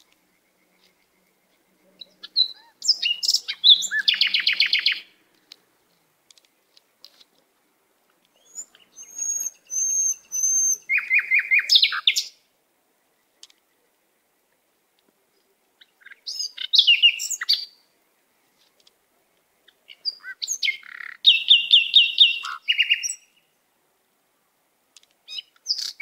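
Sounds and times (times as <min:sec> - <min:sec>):
canary singing whistled notes and trills: 0:02.0 - 0:05.1, 0:08.4 - 0:12.3, 0:15.8 - 0:17.8, 0:19.9 - 0:23.4.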